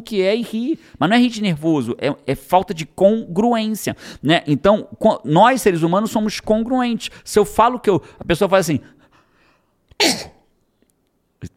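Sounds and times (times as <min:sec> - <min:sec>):
speech: 0:00.0 - 0:09.0, 0:10.0 - 0:10.4
loud forceful sneeze: 0:10.0 - 0:10.5.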